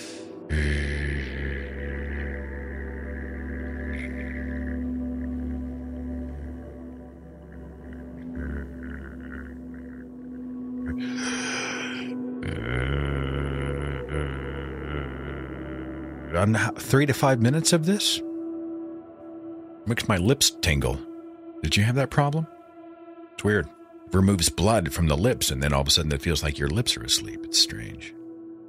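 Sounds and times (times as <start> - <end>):
humming breath imitating a bumblebee in a breathing exercise: 0.0 - 16.4
inhale through the nose: 11.0 - 12.2
speech: 16.4 - 18.2, 19.9 - 22.5, 23.4 - 28.2.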